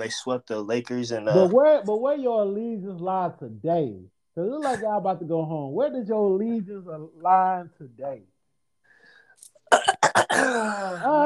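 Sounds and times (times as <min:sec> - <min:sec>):
speech: 0:00.0 - 0:08.3, 0:09.7 - 0:11.2
person clearing throat: 0:09.7 - 0:11.2.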